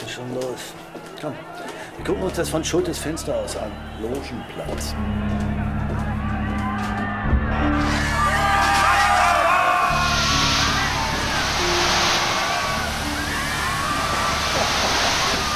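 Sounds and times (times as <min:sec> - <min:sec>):
speech: 0:00.2 - 0:05.6
dense crowd shouting and whooping: 0:03.6 - 0:15.5
fire hoses spraying high-pressure water on crowd: 0:09.9 - 0:15.5.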